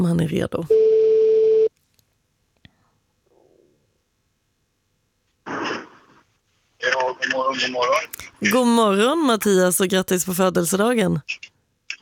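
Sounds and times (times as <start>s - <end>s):
speech: 0.0s - 1.0s, 7.2s - 11.5s
outgoing phone call ringback tone: 0.7s - 1.7s.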